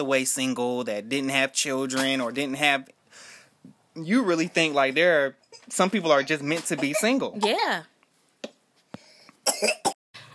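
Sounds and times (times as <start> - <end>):
speech: 0.0 - 7.9, 9.5 - 9.9
harsh coughing: 6.6 - 7.6, 9.4 - 10.0.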